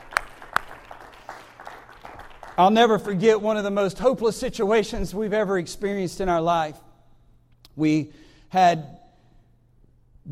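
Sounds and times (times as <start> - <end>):
audience clapping hands: 0.0 - 3.6
speech: 2.6 - 6.8, 7.8 - 9.0.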